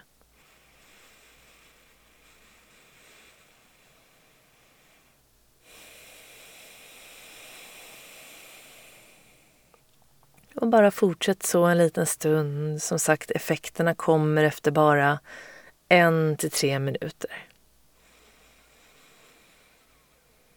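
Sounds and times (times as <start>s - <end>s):
slow breathing in and out through one nostril: 0.3s - 9.7s, 15.2s - 15.7s, 18.0s - 20.5s
speech: 10.6s - 17.5s.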